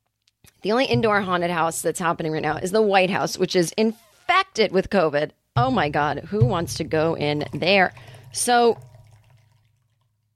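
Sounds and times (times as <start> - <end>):
speech: 0.6 - 8.9
hot coffee pouring into a carafe: 7.2 - 10.3.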